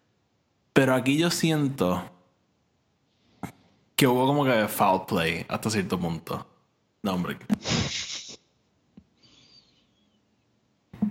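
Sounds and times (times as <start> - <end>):
speech: 0.8 - 2.2, 4.0 - 8.1
sneeze: 7.5 - 8.5.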